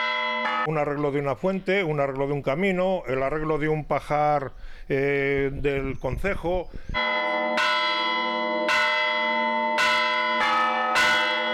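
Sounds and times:
church bells ringing a call: 0.0s - 1.1s, 7.0s - 11.5s
speech: 0.6s - 7.7s.

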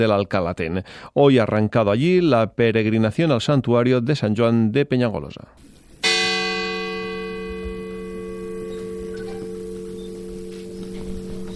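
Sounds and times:
speech: 0.0s - 5.8s
church bell ringing: 6.0s - 11.5s.

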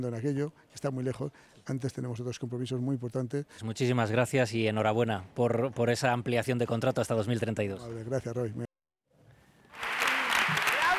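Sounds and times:
speech: 0.0s - 8.7s
audience giving a film a standing ovation at a film festival: 9.7s - 10.9s.

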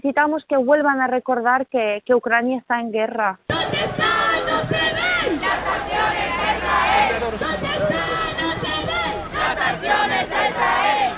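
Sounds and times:
speech: 0.0s - 8.2s
large protest crowd chanting slogans at a street demonstration in Palma: 3.5s - 11.1s.

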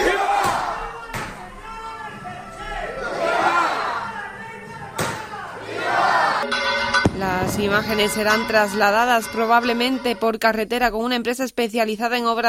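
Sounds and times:
large crowd of brotherhood members shouting cheers at a chapter meeting: 0.0s - 6.5s
speech: 7.6s - 12.4s.

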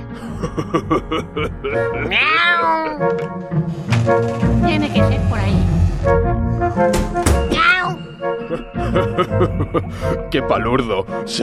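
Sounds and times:
laughter: 0.2s - 2.2s, 8.4s - 10.2s
speech: 0.2s - 7.5s, 8.5s - 11.4s
person imitating cat meows: 2.0s - 3.1s, 7.5s - 8.0s.

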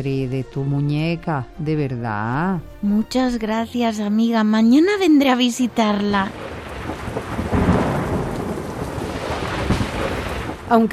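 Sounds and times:
speech: 0.0s - 6.5s, 10.7s - 10.9s
deep rumble of thunder: 4.2s - 10.9s
steady heavy rain: 5.0s - 10.9s.

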